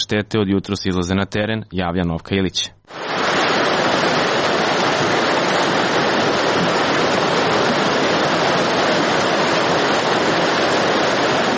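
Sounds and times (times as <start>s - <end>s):
speech: 0.1s - 3.0s
rushing floodwater after heavy rain: 2.9s - 11.5s.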